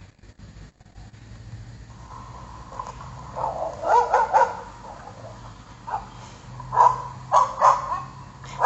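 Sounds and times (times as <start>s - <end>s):
small puppy yapping in high-pitched bursts: 3.4s - 5.1s, 5.9s - 6.1s, 6.7s - 8.6s.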